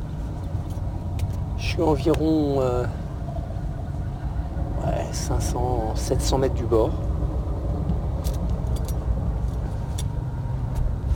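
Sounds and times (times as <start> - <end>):
tilting train rumbling past: 0.9 - 11.1
speech: 1.7 - 3.0, 5.1 - 7.2
faint metallic clicks and rattles: 8.2 - 10.2.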